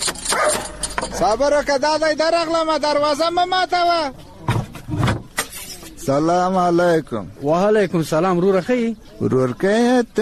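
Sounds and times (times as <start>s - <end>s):
dog barking at a house door: 0.2s - 0.9s
speech: 1.2s - 4.2s, 6.0s - 10.1s.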